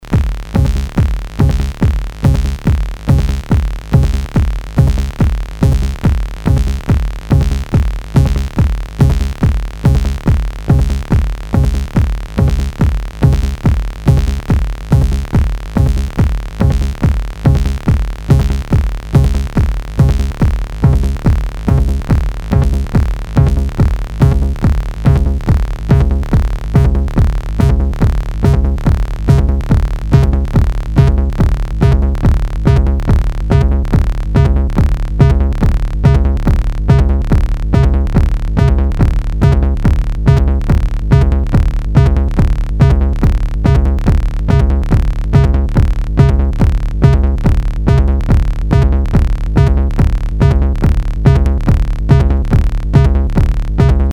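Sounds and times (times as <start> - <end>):
TS303 and MS20 synthesizers: 0.0 - 54.1.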